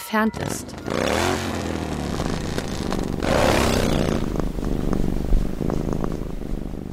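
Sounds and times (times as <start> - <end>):
speech: 0.1 - 1.6
domestic cat purring: 0.4 - 6.9.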